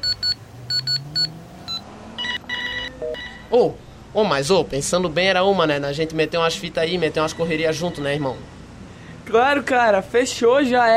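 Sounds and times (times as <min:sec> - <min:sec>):
telephone ringing on an outgoing call: 0:00.0 - 0:03.5
speech: 0:03.5 - 0:08.5, 0:09.3 - 0:10.9.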